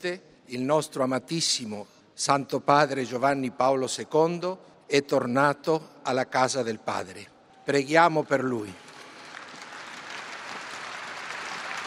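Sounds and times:
speech: 0:00.0 - 0:08.8
large outdoor crowd applauding in a large square: 0:08.6 - 0:11.8.

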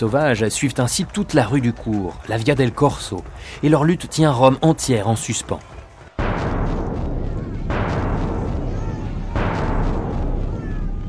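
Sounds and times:
speech: 0:00.0 - 0:05.8
long rumbling echo of cannon shots: 0:06.0 - 0:11.0
heavy cannon shots booming: 0:06.2 - 0:11.0.

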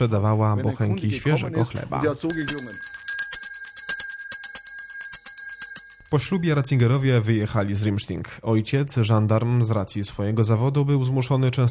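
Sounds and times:
speech: 0:00.0 - 0:02.9, 0:06.1 - 0:11.7
small pull-string shop door bell jangling: 0:02.3 - 0:06.8.

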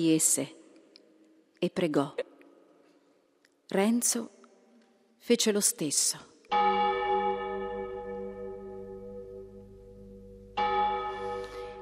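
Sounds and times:
speech: 0:00.0 - 0:00.6, 0:01.6 - 0:02.3, 0:03.7 - 0:04.4, 0:05.2 - 0:06.8
church bell ringing with deep resonant tone: 0:06.5 - 0:11.7.

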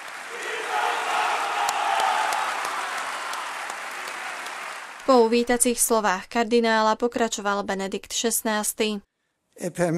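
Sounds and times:
large crowd of priests applauding in a reverberant hall: 0:00.0 - 0:05.7
speech: 0:05.1 - 0:09.9.

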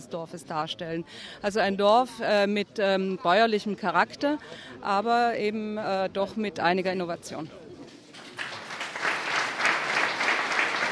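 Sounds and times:
speech: 0:00.0 - 0:07.6
crowd applauding: 0:08.1 - 0:10.8.

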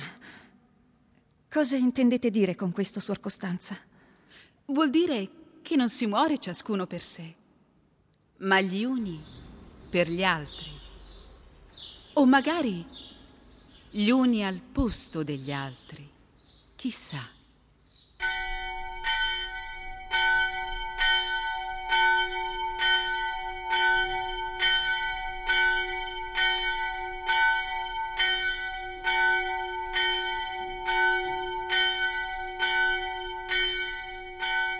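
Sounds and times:
speech: 0:01.5 - 0:03.9, 0:04.7 - 0:07.4, 0:08.4 - 0:10.7, 0:11.8 - 0:13.1, 0:13.9 - 0:16.1, 0:16.8 - 0:17.4
church bell tolling: 0:18.2 - 0:34.7.

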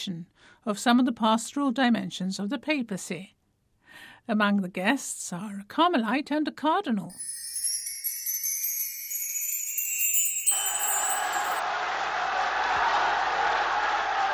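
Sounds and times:
speech: 0:00.0 - 0:03.4, 0:04.0 - 0:07.4
bright high tinkling: 0:07.1 - 0:11.6
large crowd of prisoners cheering and shouting in a Roman prison: 0:10.5 - 0:14.3.

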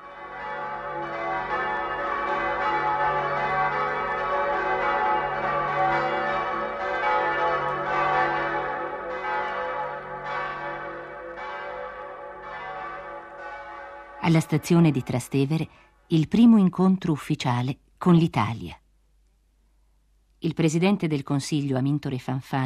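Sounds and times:
church bells pealing festively: 0:00.0 - 0:15.6
speech: 0:14.3 - 0:18.8, 0:20.4 - 0:22.6.

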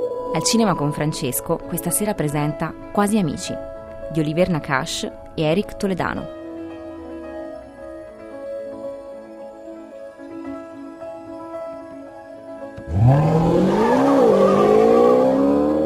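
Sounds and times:
speech: 0:00.3 - 0:06.4
Maserati car engine roaring at high speed through Paris: 0:12.8 - 0:15.8.

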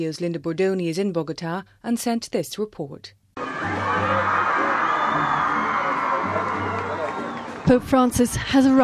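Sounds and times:
speech: 0:00.0 - 0:04.4, 0:07.7 - 0:08.8
large crowd of Colombian faithful cheering and whooping at Bogota Airport: 0:03.4 - 0:07.9.

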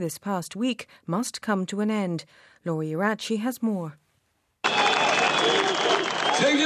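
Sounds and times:
speech: 0:00.0 - 0:04.0, 0:06.4 - 0:06.6
clapping: 0:04.6 - 0:06.6
large crowd roaring and cheering: 0:04.6 - 0:06.6
people shouting: 0:04.7 - 0:06.6
whistles: 0:04.7 - 0:06.6.

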